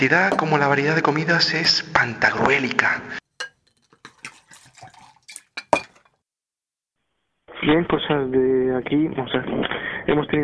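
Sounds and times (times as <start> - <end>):
speech: 0.0 - 3.2, 7.6 - 10.4
plates and cutlery set on long dinner tables in a large dining hall: 3.4 - 6.1.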